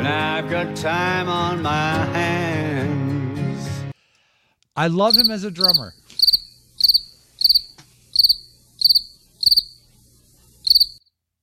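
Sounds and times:
speech: 0.0s - 3.0s, 4.8s - 7.8s, 10.8s - 11.2s
crickets chirping: 5.1s - 11.0s.

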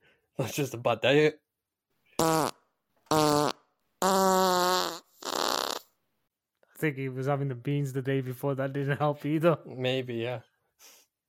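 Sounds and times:
speech: 0.4s - 1.4s, 6.8s - 11.0s
farting: 2.2s - 6.0s.

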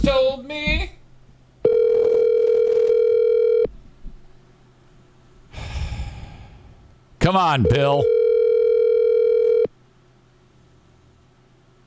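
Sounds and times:
telephone dial tone after failed call: 1.7s - 3.7s, 8.0s - 9.7s
speech: 7.3s - 8.2s.

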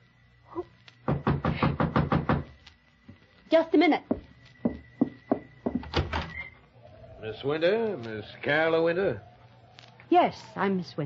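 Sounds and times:
firm knocks on a wooden door: 1.1s - 2.5s, 4.1s - 6.1s
speech: 3.5s - 4.2s, 7.2s - 9.3s, 10.1s - 11.0s.

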